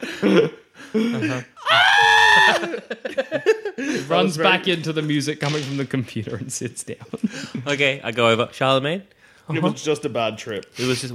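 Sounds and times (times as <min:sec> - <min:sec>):
laughter: 0:00.0 - 0:04.6, 0:06.9 - 0:07.8
speech: 0:00.2 - 0:11.1
loud sustained high-pitched scream: 0:01.6 - 0:02.8.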